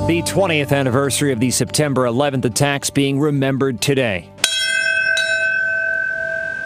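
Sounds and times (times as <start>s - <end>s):
speech: 0.1s - 4.4s
memorial bell struck during a ceremony in Lower Manhattan: 4.4s - 6.6s.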